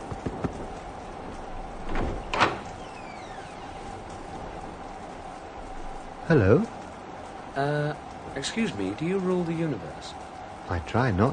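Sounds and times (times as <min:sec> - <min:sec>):
door rattling thud as the door is moved or opened: 0:01.7 - 0:04.1
speech: 0:06.3 - 0:06.8, 0:07.6 - 0:11.3.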